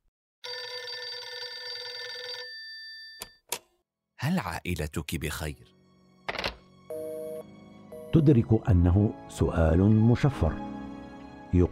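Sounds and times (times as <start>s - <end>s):
telephone bell ringing: 0.4s - 3.4s, 6.9s - 8.1s
speech: 4.2s - 5.8s, 8.1s - 10.8s, 11.5s - 11.7s.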